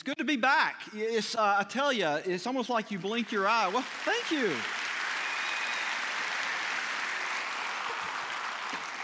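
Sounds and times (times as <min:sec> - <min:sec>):
speech: 0:00.0 - 0:05.0
congregation clapping: 0:02.9 - 0:09.0.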